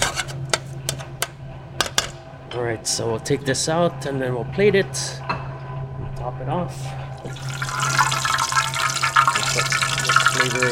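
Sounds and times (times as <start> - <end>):
low steady hum: 0.0 - 10.7
speech: 2.5 - 5.4, 6.4 - 7.0, 10.4 - 10.7
water running from a tap while rinsing food: 7.2 - 10.7.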